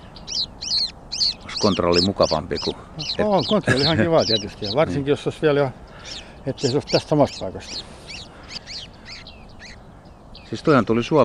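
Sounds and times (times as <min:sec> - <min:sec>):
bearded reedling calls in a reed bed: 0:00.0 - 0:11.2
speech: 0:01.6 - 0:08.0, 0:10.5 - 0:11.2
laughter: 0:03.4 - 0:05.0.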